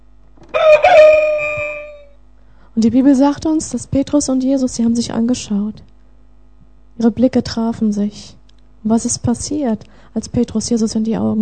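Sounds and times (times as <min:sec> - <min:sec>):
rooster crowing: 0:00.4 - 0:02.2
speech: 0:02.8 - 0:05.9, 0:07.0 - 0:11.4.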